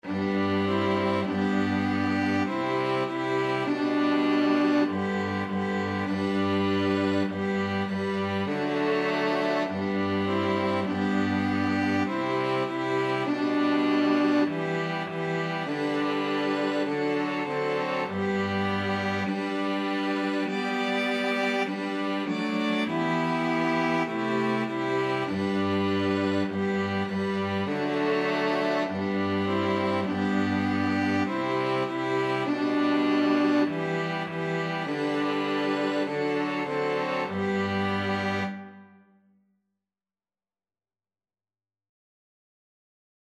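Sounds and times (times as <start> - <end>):
string quartet: 0.0 - 39.0.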